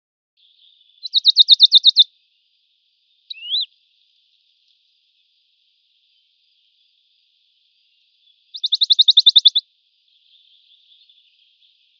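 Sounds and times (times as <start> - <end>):
Western Bonelli's warbler singing rattling trills: 0.4 - 2.1, 3.3 - 3.7, 7.8 - 11.9
Western Bonelli's warbler upslurred call note: 3.3 - 3.7.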